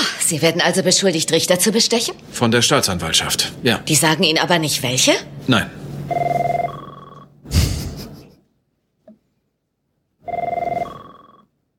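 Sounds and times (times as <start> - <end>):
speech: 0.3 - 6.4
telephone ringing with a bright warbling electronic tone: 6.1 - 7.4, 10.2 - 11.6.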